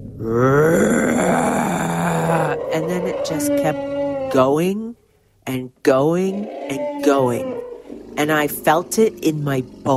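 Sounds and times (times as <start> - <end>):
person vocally imitating an elephant's roar: 0.1 - 4.6, 6.2 - 8.2
speech: 0.2 - 1.1, 3.2 - 4.9, 5.5 - 7.6, 8.2 - 9.9.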